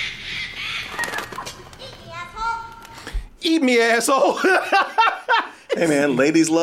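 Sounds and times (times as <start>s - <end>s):
bird squawking and chirping: 0.0s - 1.6s
noisy background: 0.0s - 6.6s
speech: 3.5s - 5.2s, 5.8s - 6.6s
laughter: 4.2s - 6.2s.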